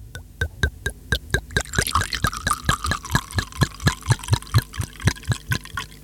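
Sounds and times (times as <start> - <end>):
drink glugging out of a bottle into a glass: 1.4 - 6.0.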